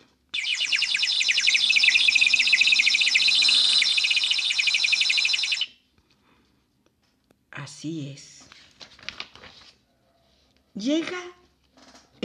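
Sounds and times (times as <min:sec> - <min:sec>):
frog singing a high shrill chirping trill: 0:00.4 - 0:05.7
speech: 0:07.8 - 0:08.3, 0:10.8 - 0:11.4.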